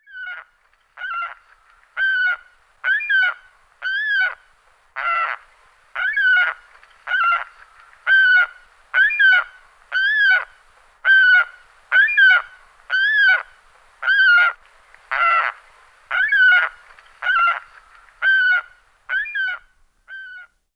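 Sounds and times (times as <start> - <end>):
saker falcon Falco cherrug: 0.0 - 20.6.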